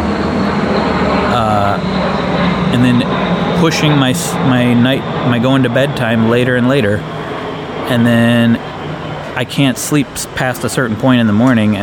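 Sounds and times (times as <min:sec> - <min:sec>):
airplane passing overhead: 0:00.0 - 0:11.8
speech: 0:02.8 - 0:07.2, 0:07.9 - 0:08.8, 0:09.4 - 0:11.8.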